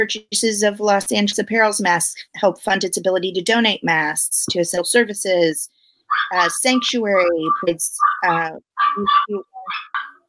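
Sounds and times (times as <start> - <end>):
speech: 0.0 - 9.9
Pomeranian dog barking in high-pitched yappy bursts: 6.1 - 6.4, 7.4 - 10.2.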